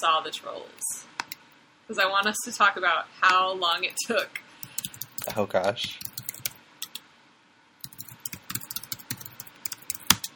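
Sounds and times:
speech: 0.0s - 1.2s, 1.9s - 4.4s, 5.2s - 6.1s
typing on a computer keyboard: 4.3s - 7.0s, 7.8s - 10.3s.

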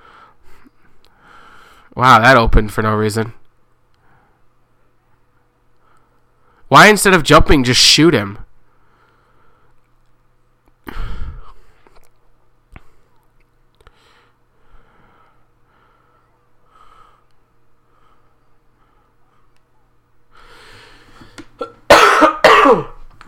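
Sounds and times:
faint breathy noises: 0.0s - 2.0s, 3.9s - 4.6s, 5.8s - 6.7s, 8.6s - 9.9s, 10.8s - 12.0s, 13.8s - 19.6s, 20.3s - 21.6s
speech: 2.0s - 3.4s, 6.7s - 8.4s
loud coughing fit: 21.6s - 23.0s.

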